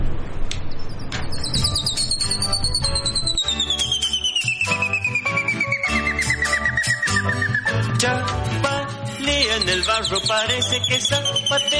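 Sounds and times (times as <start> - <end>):
low rumble: 0.0 - 1.8
rufous hornero calling: 0.7 - 7.9, 9.2 - 11.7
speech: 10.1 - 11.7.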